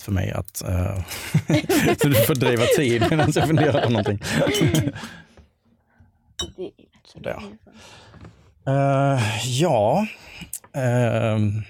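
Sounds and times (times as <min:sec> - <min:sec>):
speech: 0:00.0 - 0:05.3, 0:06.4 - 0:11.6
laughter: 0:01.2 - 0:05.2
glasses of bubbly clinking in a toast: 0:04.3 - 0:05.0, 0:06.4 - 0:06.6.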